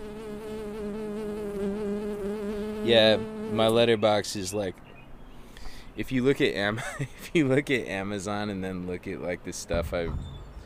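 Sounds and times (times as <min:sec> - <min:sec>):
insect buzzing: 0:00.0 - 0:03.8
speech: 0:02.9 - 0:04.8, 0:06.0 - 0:10.4.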